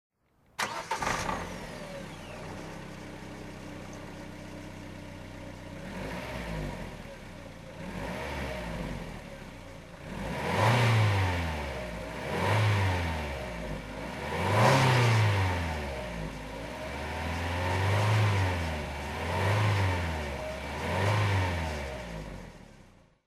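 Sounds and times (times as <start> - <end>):
Morgan 4/4 Zetec car engine throttle revving: 0.6 - 23.0.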